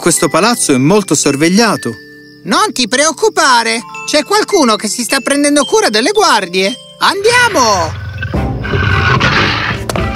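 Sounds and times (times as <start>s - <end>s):
speech: 0.0s - 8.0s
lion roaring: 7.5s - 10.1s.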